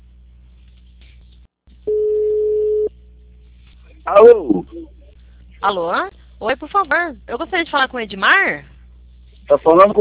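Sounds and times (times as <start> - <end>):
soft telephone line hum: 0.0 - 10.0
telephone ringing tone on an outgoing call: 1.9 - 2.9
speech: 4.1 - 5.0, 5.6 - 8.7, 9.5 - 10.0.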